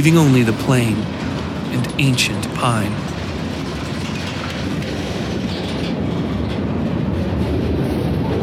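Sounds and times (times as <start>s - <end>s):
speech: 0.0s - 3.2s
train clattering along the rails: 0.0s - 8.4s.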